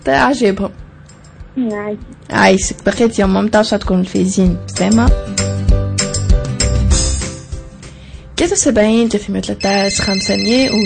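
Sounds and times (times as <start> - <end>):
speech: 0.0 - 0.8, 1.6 - 5.8, 8.4 - 10.8
music: 0.0 - 10.8
bright electronic telephone ringtone for an incoming call: 9.6 - 10.8.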